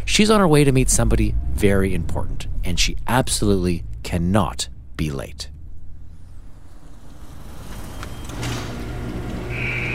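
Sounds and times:
car engine rumbling rolling into an automatic car wash: 0.0 - 9.3
speech: 0.2 - 5.5
automatic car wash machinery high whine: 6.3 - 9.9.

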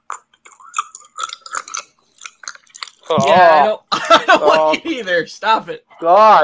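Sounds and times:
ASMR mouth sounds, wet clicks, smacks and chewing-like pops: 0.0 - 3.2
speech: 3.1 - 6.4
laughter: 3.2 - 5.0.

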